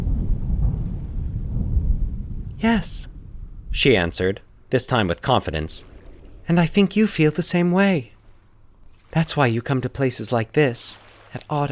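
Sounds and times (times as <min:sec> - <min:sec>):
deep steady thunder rumbling: 0:00.0 - 0:08.9
speech: 0:02.6 - 0:03.1, 0:03.7 - 0:05.9, 0:06.5 - 0:08.2, 0:09.1 - 0:11.6.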